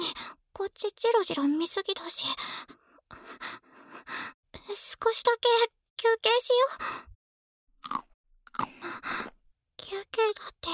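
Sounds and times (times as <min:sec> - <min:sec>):
speech: 0:00.7 - 0:03.6, 0:04.7 - 0:07.1, 0:08.8 - 0:10.7
crunchy chewing of food: 0:07.8 - 0:09.5.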